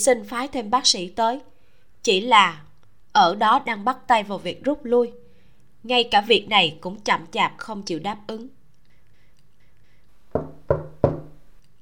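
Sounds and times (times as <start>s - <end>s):
speech: 0.0s - 5.2s, 5.8s - 8.6s
firm knocks on an entrance door: 10.3s - 11.4s.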